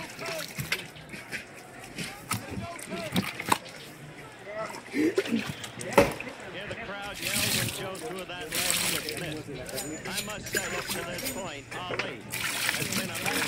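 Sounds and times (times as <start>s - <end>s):
water trickling and sloshing as food is rinsed to wash off salt: 0.0s - 4.0s, 4.6s - 13.4s
people talking: 0.0s - 13.4s.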